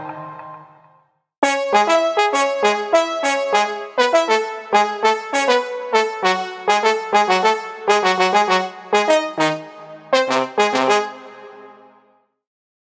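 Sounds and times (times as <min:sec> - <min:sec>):
dancehall afrobeats melodies: 0:01.4 - 0:11.7.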